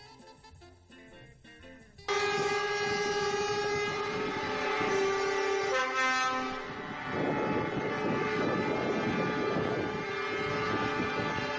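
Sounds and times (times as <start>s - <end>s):
horns of more than 300 trucks honking in protest in the centre of Pamplona Spain: 2.0s - 11.5s
noisy street din in Pamplona Spain: 2.0s - 11.5s.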